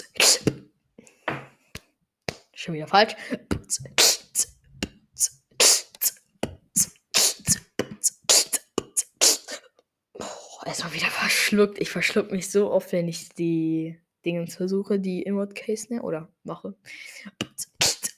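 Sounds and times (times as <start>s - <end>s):
person beatboxing kick, hi-hat and inward K snare beat: 0.0s - 0.6s, 3.4s - 9.6s, 17.3s - 18.1s
speech: 2.6s - 4.6s, 5.2s - 5.4s, 10.7s - 17.4s.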